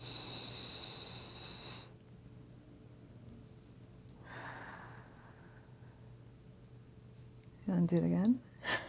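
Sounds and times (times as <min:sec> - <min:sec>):
deep breathing: 0:00.0 - 0:02.0, 0:04.2 - 0:06.1
speech: 0:07.7 - 0:08.5.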